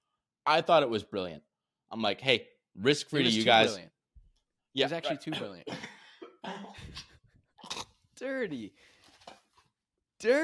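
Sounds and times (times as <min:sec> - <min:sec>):
speech: 0:00.5 - 0:03.9, 0:04.7 - 0:08.9, 0:10.2 - 0:10.4
person coughing in rough throaty bursts: 0:04.9 - 0:06.8.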